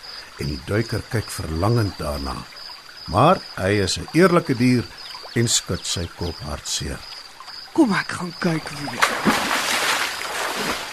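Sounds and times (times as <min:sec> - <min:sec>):
speech: 0:00.4 - 0:07.2, 0:07.8 - 0:09.5, 0:10.6 - 0:10.9
hippo diving into water with a heavy splash: 0:08.7 - 0:10.9.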